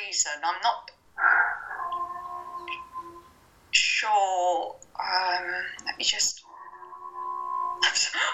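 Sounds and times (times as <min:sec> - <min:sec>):
speech: 0:00.2 - 0:00.9, 0:04.0 - 0:06.4
dog howling: 0:01.2 - 0:03.4, 0:06.4 - 0:08.3.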